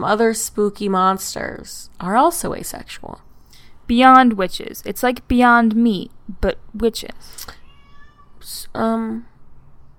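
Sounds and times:
speech: 0:00.0 - 0:03.3, 0:03.9 - 0:07.6, 0:08.4 - 0:09.3
cat letting out plaintive meows: 0:07.4 - 0:08.4.

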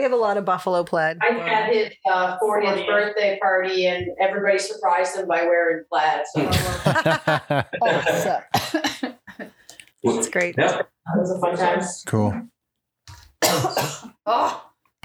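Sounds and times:
speech: 0:00.0 - 0:12.5, 0:13.5 - 0:15.0
laughter: 0:06.4 - 0:09.6
harsh throaty coughing fit: 0:08.0 - 0:09.5, 0:13.4 - 0:14.6.

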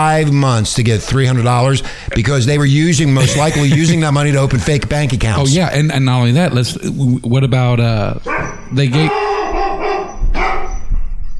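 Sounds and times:
speech: 0:00.0 - 0:09.3
laughter: 0:00.7 - 0:05.4
dog barking in a studio: 0:08.2 - 0:11.2.

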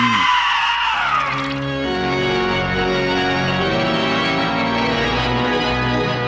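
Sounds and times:
person screaming: 0:00.0 - 0:01.4
dramatic orchestral music: 0:00.9 - 0:06.2.

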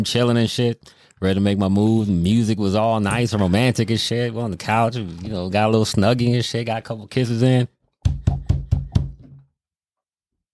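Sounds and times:
speech: 0:00.0 - 0:08.4
heavy firm knocks on a wooden door: 0:08.0 - 0:09.4.

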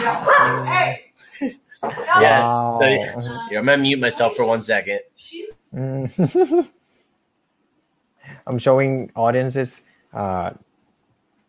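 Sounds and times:
dog yipping: 0:00.0 - 0:00.8
dogs barking and yelping: 0:00.0 - 0:01.0
speech: 0:00.1 - 0:06.8, 0:08.3 - 0:10.7.

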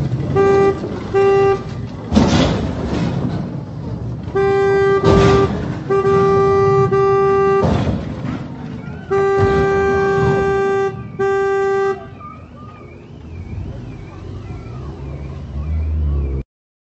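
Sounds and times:
broadband traffic noise: 0:00.0 - 0:16.4
vehicles passing: 0:00.0 - 0:16.4
car horn honking: 0:00.2 - 0:02.0, 0:04.2 - 0:08.1, 0:08.7 - 0:15.4
higher warbling siren-like tone: 0:08.8 - 0:16.4.

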